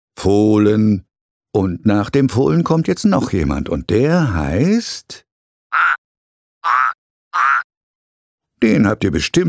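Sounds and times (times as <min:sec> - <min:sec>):
speech: 0:00.2 - 0:05.9, 0:08.6 - 0:09.4
frog croaking: 0:05.7 - 0:06.0, 0:06.6 - 0:07.7.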